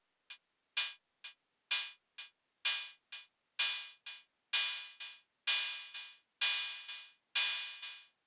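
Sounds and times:
closed hi-hat from a drum machine: 0.8 - 8.2.

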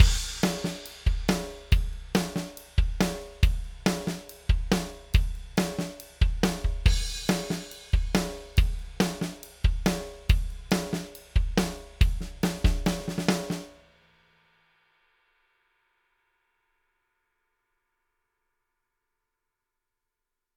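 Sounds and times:
drums processed through a PreSonus CTC-1 console shaper: 0.0 - 14.4.

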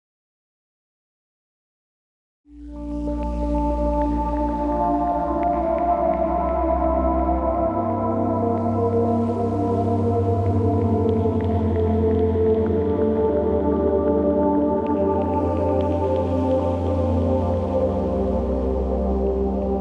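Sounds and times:
ambient synth pad with reverb: 2.6 - 19.8.

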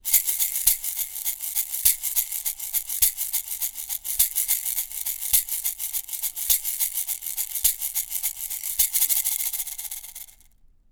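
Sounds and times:
Mangabey shaker: 0.0 - 10.6.

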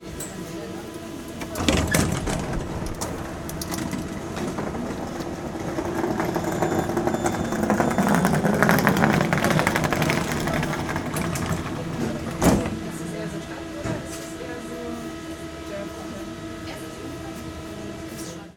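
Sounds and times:
tram door opening: 0.0 - 14.5.

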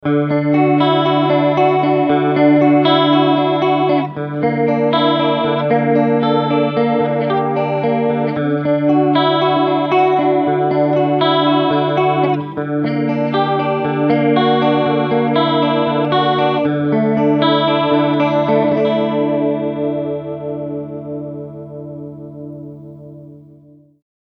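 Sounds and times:
MXR analog chorus: 0.0 - 24.0.

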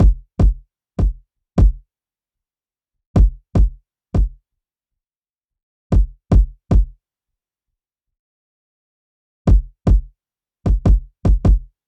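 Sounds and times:
kick drum before EQ: 0.0 - 1.8, 3.2 - 4.4, 5.9 - 7.0, 9.5 - 10.1, 10.7 - 11.7.

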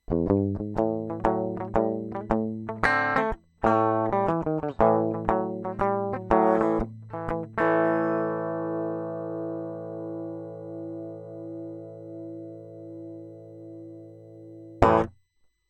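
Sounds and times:
dry guitar: 0.0 - 15.2.

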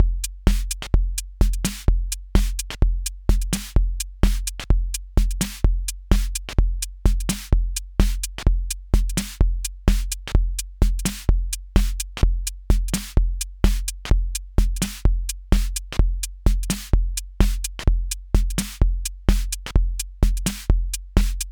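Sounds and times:
Akai Rhythm Wolf drum machine swing rhythm: 0.0 - 21.5.

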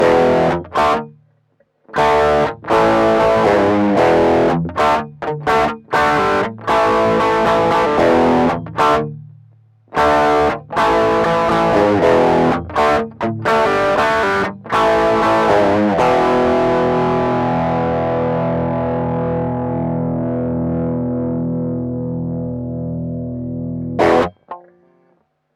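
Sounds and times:
bass guitar through preamp at maximum gain with active pickups: 0.0 - 25.1.

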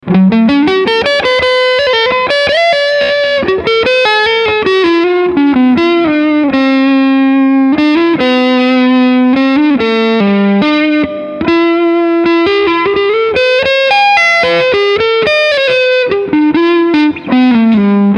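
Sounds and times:
Epiphone Casino Coupe electric guitar on neck P90 pickup with overdrive: 0.0 - 18.1.

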